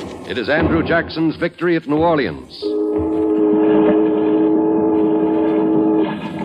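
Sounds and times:
speech: 0.3 - 2.7
steamboat steam whistle blast on the Hudson: 2.6 - 6.4.

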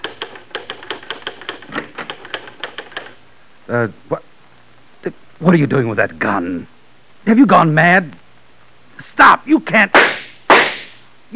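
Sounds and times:
mechanical typewriter keystrokes: 0.0 - 3.2
speech: 3.7 - 4.3, 5.0 - 8.2, 9.2 - 10.1.

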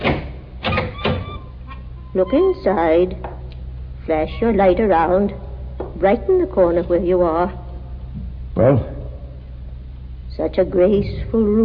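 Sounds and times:
parlor door latch and handle clunking and rattling as door opens: 0.0 - 1.5
low rumble: 0.0 - 11.6
speech: 2.1 - 3.3, 4.0 - 5.4, 6.0 - 7.6, 8.6 - 8.9, 10.4 - 11.6.

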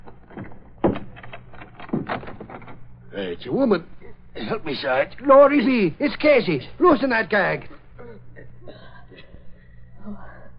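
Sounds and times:
knock: 0.3 - 1.2
closet door thump: 0.3 - 2.8
speech: 3.2 - 7.7.

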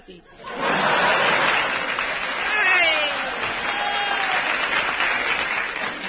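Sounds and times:
scattered audience chuckles: 0.2 - 3.6
audience applause: 0.5 - 6.0.

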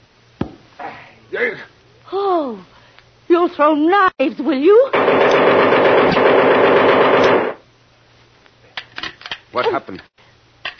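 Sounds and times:
speech: 1.3 - 2.7, 3.5 - 6.7, 9.5 - 10.3
rapid automatic gunfire from a gun before it jams: 4.9 - 7.6.

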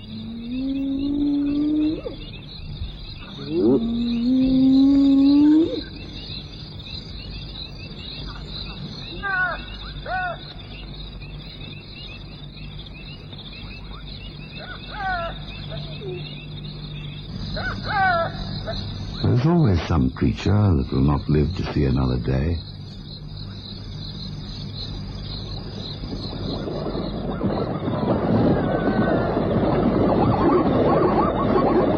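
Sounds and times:
hyenas and jackals howling in chorus: 0.0 - 2.4, 3.3 - 5.9, 14.5 - 16.3, 17.5 - 19.0, 26.6 - 31.9
nighttime insect drone: 0.0 - 31.9
speech: 19.9 - 22.7.

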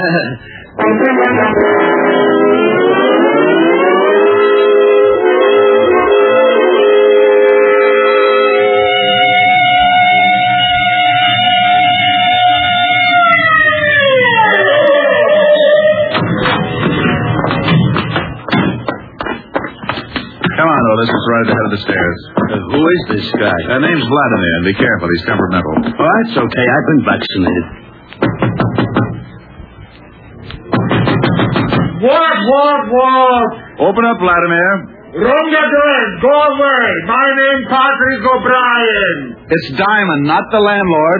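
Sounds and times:
speech: 0.0 - 2.2, 21.0 - 27.8, 32.5 - 41.1
police car siren wailing while driving: 1.3 - 17.5
clattering thumps and knocks: 16.1 - 24.0, 25.6 - 26.2, 28.2 - 29.3, 30.6 - 32.0.

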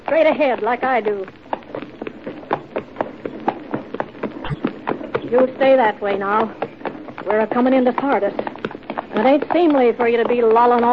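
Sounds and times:
small black horse hooves clip-clopping while being ridden: 0.0 - 10.9
speech: 0.1 - 1.4, 5.3 - 6.6, 7.2 - 8.5, 9.2 - 10.9.

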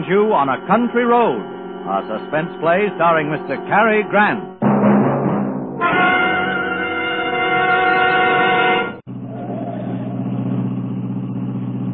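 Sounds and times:
car engines rumbling in traffic: 0.0 - 4.6, 6.6 - 11.9
loud sustained tonal drone: 0.0 - 4.6, 5.8 - 10.4
speech: 0.1 - 4.5.

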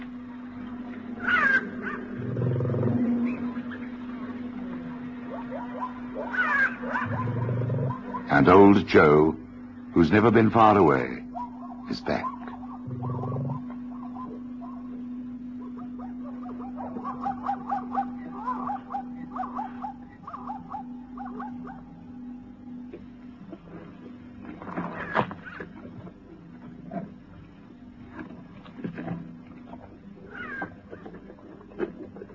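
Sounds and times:
low drone of night ambience: 0.0 - 32.3
black-backed jackal wailing and yelping: 1.2 - 8.5, 11.3 - 15.0, 15.6 - 22.3, 30.3 - 31.2
speech: 8.4 - 9.4, 10.0 - 11.2, 11.9 - 12.3.

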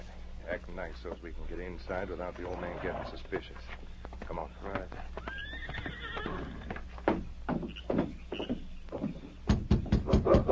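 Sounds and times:
hooves clopping on the ground: 0.0 - 10.5
speech: 0.8 - 5.5
horses snorting: 2.0 - 3.8, 4.7 - 9.3
horses whinnying: 2.4 - 3.3, 5.1 - 6.9.

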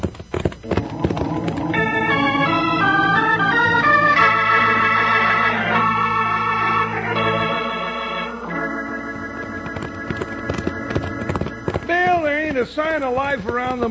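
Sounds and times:
horses galloping, hooves clip-clopping: 0.0 - 7.6, 8.5 - 13.8
speech: 13.0 - 13.8.

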